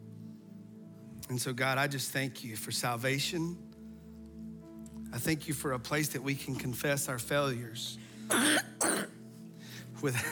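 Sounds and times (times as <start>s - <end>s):
speech: 1.2s - 3.7s, 5.1s - 8.6s, 10.0s - 10.3s
person coughing in a congregation during a morning prayer: 8.3s - 9.2s.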